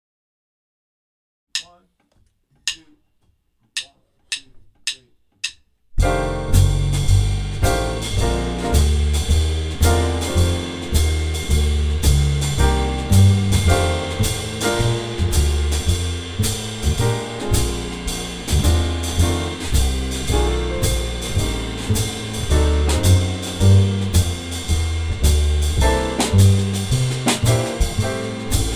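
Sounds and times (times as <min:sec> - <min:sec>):
blues playalong in F: 0:06.0 - 0:28.7.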